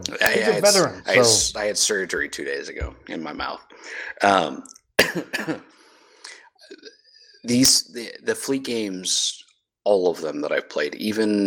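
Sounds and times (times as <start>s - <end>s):
speech: 0.0s - 5.8s, 6.7s - 11.4s
person coughing after a sip of whiskey: 5.0s - 5.7s.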